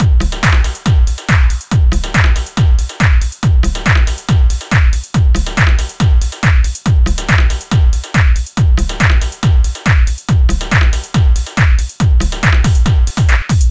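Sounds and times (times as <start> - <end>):
140 house dance drum beat: 0.0 - 13.6.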